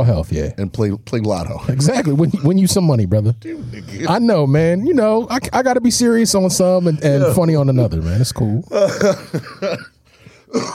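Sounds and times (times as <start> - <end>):
speech: 0.0 - 9.9, 10.5 - 10.7
person coughing: 3.4 - 4.2, 8.7 - 10.7
gravelly throat clearing: 10.5 - 10.7.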